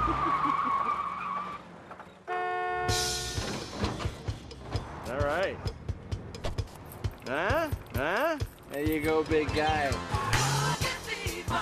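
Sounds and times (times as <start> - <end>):
red sports car tires squealing in a long high skid: 0.0 - 2.1
rough noisy engine and road sound: 0.0 - 11.6
sudden bright honking tone: 2.3 - 3.4
speech: 8.9 - 10.2.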